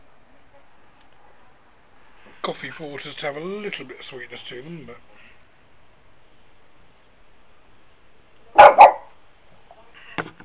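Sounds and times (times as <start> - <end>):
soft rustle: 0.3 - 8.4
speech: 2.4 - 5.2
dog barking while jumping at shadows: 8.5 - 9.2
dog yipping: 8.6 - 9.1.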